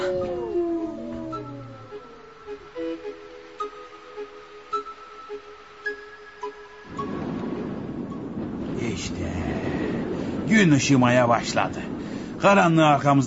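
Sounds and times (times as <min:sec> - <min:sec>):
several wolves howling together: 0:00.0 - 0:03.2
rushing wind-like noise: 0:00.9 - 0:13.2
speech: 0:10.6 - 0:13.2.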